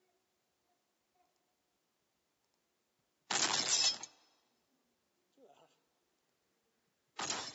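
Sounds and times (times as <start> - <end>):
tinkling glass debris: 3.3 - 4.2, 7.2 - 7.5
glass shattering: 3.3 - 4.3, 7.2 - 7.5.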